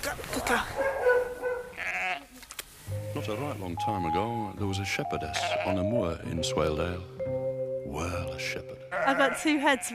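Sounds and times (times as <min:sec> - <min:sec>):
speech: 0:00.5 - 0:00.8, 0:03.2 - 0:09.9
several sheep bleating in a lambing shed during a birth: 0:01.7 - 0:02.4, 0:05.3 - 0:05.9, 0:08.9 - 0:09.9.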